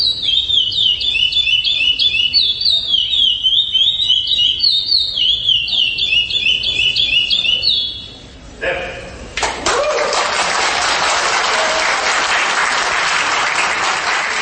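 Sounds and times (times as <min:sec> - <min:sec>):
songbird kept by breeders singing a repeated high trilled phrase: 0:00.0 - 0:08.3
dense wash of applause-like noise: 0:09.4 - 0:14.4.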